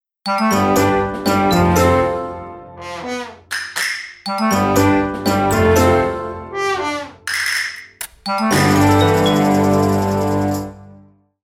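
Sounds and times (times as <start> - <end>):
cute jingle: 0.2 - 2.4, 4.2 - 7.2, 8.2 - 10.8.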